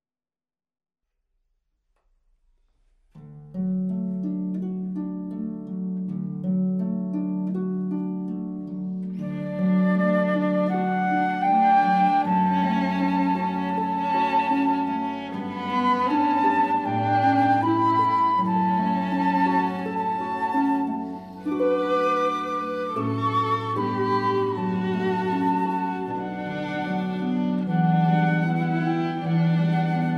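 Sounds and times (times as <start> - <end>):
harp: 3.1 - 30.1
violin: 8.9 - 30.1
flute: 9.1 - 30.1.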